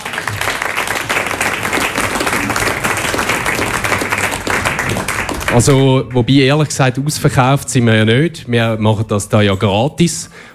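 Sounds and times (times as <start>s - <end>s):
audience applause at a live election debate event: 0.0s - 5.9s
speech: 5.5s - 10.5s.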